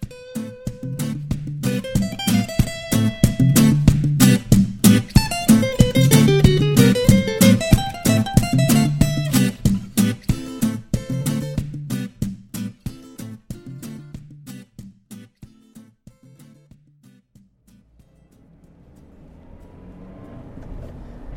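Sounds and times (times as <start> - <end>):
rhythmic music: 0.0 - 16.8
road noise inside a car driving through Chichester: 17.7 - 21.3.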